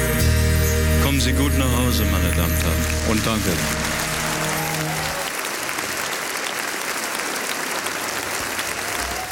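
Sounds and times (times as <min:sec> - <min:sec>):
closing song music: 0:00.0 - 0:05.3
speech: 0:01.2 - 0:04.0
large concert audience applause at a farewell show: 0:01.6 - 0:09.3.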